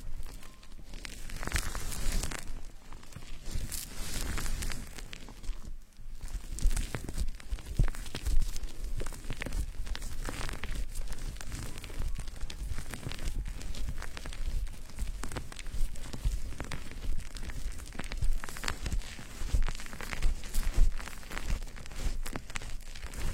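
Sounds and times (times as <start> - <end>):
fingers scratching through a foamy lathered scalp during a hair wash: 0.0 - 23.3.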